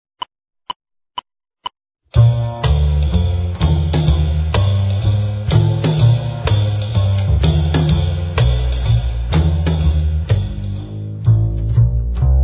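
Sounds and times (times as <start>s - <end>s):
drum kit: 2.2s - 12.3s.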